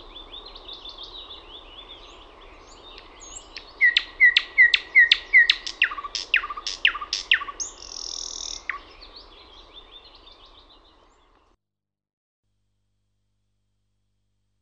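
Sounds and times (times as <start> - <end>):
thrush nightingale singing: 0.0 - 11.6.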